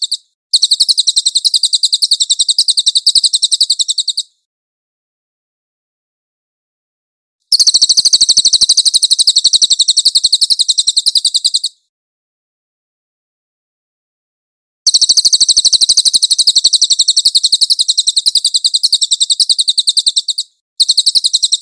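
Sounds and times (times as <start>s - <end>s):
cililin bird buzzy high chirping trill: 0.0s - 4.4s, 7.5s - 11.8s, 14.9s - 21.6s.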